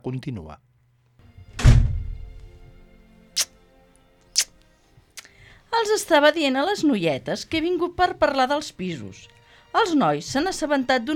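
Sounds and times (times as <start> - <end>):
speech: 0.0 - 0.7, 5.8 - 11.1
heavy wooden door opening: 1.4 - 2.4.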